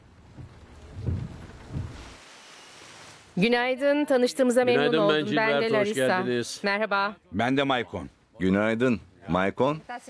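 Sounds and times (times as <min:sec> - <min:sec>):
steady rain hissing: 0:00.4 - 0:03.6
speech: 0:03.4 - 0:10.0.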